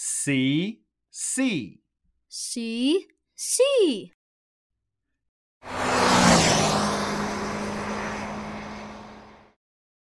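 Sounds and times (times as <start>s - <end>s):
speech: 0.0s - 4.2s
car engine driving by: 5.6s - 9.6s.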